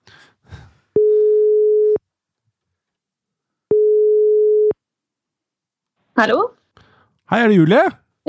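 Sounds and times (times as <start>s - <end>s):
phone line outgoing ringing tone beeps: 1.0s - 2.0s, 3.7s - 4.8s
speech: 6.2s - 6.6s, 7.3s - 8.2s.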